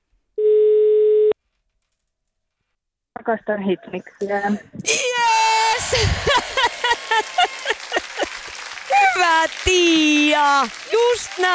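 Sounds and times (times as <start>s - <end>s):
telephone ringing tone while dialing: 0.4s - 1.4s
speech: 3.2s - 6.5s, 9.2s - 11.5s
laughter: 3.8s - 11.5s.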